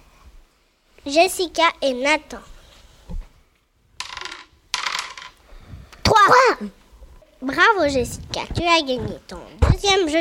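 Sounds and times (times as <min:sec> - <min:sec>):
speech: 0:01.0 - 0:02.5, 0:06.6 - 0:06.8, 0:07.4 - 0:10.1
dice clattering and tumbling across a hard surface in a dice-throwing game: 0:04.0 - 0:05.4.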